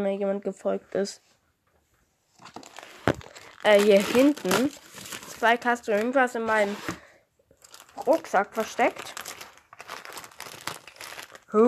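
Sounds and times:
speech: 0.0s - 1.4s, 3.6s - 7.0s, 8.0s - 9.2s
empty plastic bag crinkling: 2.4s - 7.0s, 7.6s - 11.6s.

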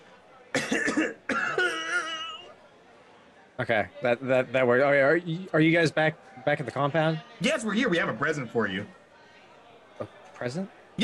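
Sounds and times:
person coughing as a signal: 0.6s - 2.4s
speech: 3.6s - 9.0s, 10.0s - 11.0s.

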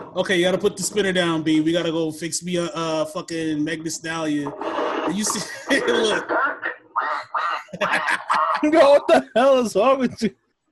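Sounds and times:
speech: 0.2s - 6.5s, 7.8s - 10.4s
laughter: 4.5s - 10.3s
duck quacking: 4.6s - 8.8s.

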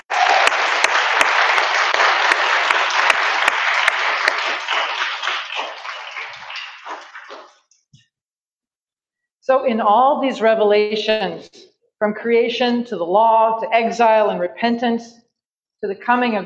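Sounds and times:
people at a church applauding a group of children: 0.0s - 7.6s
speech: 9.5s - 15.2s, 15.8s - 16.4s.

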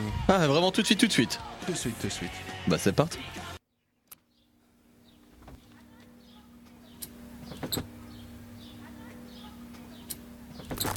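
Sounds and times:
speech: 0.0s - 3.4s
motorized garage door electric motor droning: 5.1s - 10.9s
moving garage door panels clanking and rattling: 7.4s - 8.2s, 9.8s - 10.9s.

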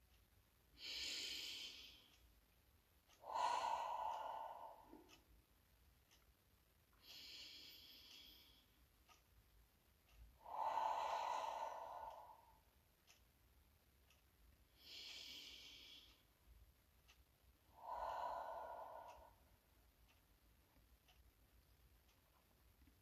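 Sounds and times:
slow deep breaths with airy inhales and sighing exhales: 0.8s - 2.2s, 3.1s - 5.3s, 7.0s - 9.2s, 10.4s - 13.2s, 14.7s - 16.4s, 17.6s - 20.2s.

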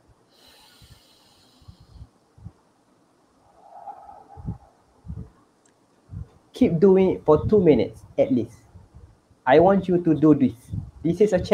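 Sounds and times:
hissy breath drawn in through the nose: 0.3s - 2.1s
speech: 6.6s - 8.6s, 9.5s - 11.5s.

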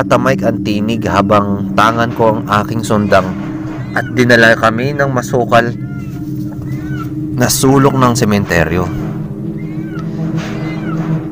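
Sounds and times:
speech: 0.0s - 5.8s, 7.4s - 9.0s
steady low hum: 0.0s - 11.3s
several cats meowing in drawn-out wails: 2.5s - 11.3s.

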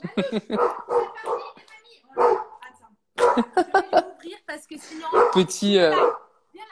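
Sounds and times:
laughter: 0.0s - 1.0s, 3.2s - 4.2s
speech: 0.2s - 1.1s, 4.7s - 6.2s
dog barking agitatedly: 0.5s - 2.6s, 3.2s - 3.6s, 5.1s - 6.4s.

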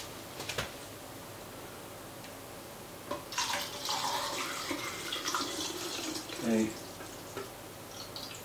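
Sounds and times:
fixer poured into a film developing tank: 3.3s - 8.4s
speech: 6.4s - 6.8s.

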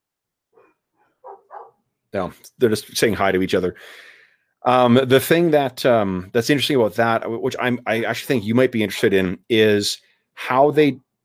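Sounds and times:
dog barking outside: 0.6s - 1.8s
speech: 2.1s - 11.0s.

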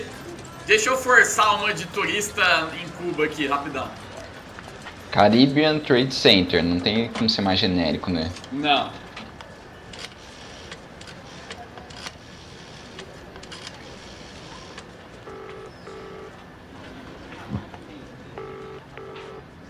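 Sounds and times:
speech: 0.7s - 4.0s, 5.2s - 9.0s
old rotary telephone being dialed: 9.8s - 16.4s
brief tones: 15.2s - 16.4s, 18.4s - 19.4s.

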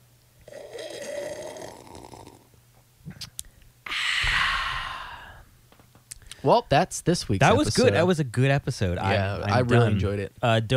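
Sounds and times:
slurping sips of tea: 0.4s - 2.4s
speech: 6.4s - 10.7s.

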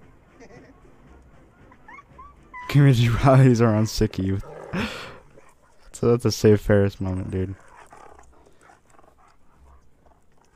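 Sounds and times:
dog barking and growling: 1.1s - 6.0s, 7.6s - 10.5s
speech: 2.7s - 5.1s, 6.0s - 7.6s.

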